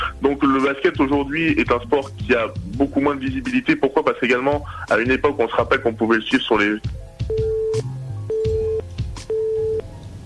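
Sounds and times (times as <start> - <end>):
speech: 0.2 - 7.0
telephone line beeps after call dropped: 7.3 - 9.9.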